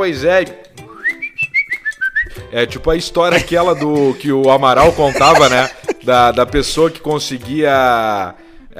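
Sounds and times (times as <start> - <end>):
speech: 0.0 - 0.7, 2.5 - 8.7
person whistling short clear notes: 0.8 - 2.5
laughter: 3.3 - 7.0.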